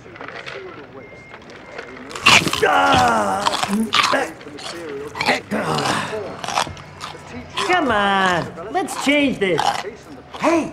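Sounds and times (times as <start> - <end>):
loud crunching while chewing food: 0.0 - 10.7
groaning growl-like vocal sounds: 2.1 - 10.7
speech: 2.6 - 5.4, 7.7 - 10.7.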